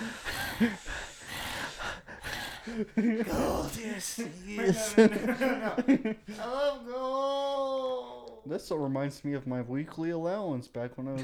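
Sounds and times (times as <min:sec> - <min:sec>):
heavy noisy breathing over someone's shoulder: 0:00.0 - 0:04.6
laughter: 0:00.0 - 0:06.8
speech: 0:00.6 - 0:01.1, 0:02.7 - 0:07.3, 0:08.4 - 0:11.2.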